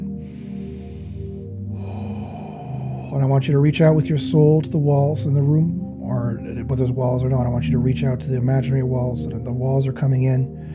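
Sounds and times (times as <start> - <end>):
deep slow meditative breathing: 0.0 - 3.7, 10.5 - 10.7
speech: 3.1 - 10.7.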